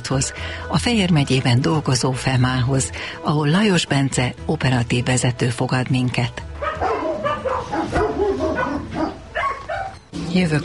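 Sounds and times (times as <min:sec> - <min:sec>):
noisy background: 0:00.0 - 0:10.6
speech: 0:00.1 - 0:06.5, 0:10.3 - 0:10.6
large dog barking with yips and whimpers: 0:06.6 - 0:10.0.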